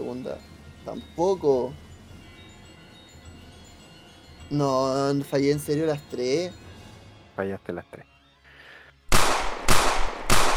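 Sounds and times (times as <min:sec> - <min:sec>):
speech: 0:00.2 - 0:01.8, 0:04.5 - 0:06.6, 0:07.4 - 0:08.1
loud sharp gunshots in a tabletop horror role-playing game: 0:09.1 - 0:10.5.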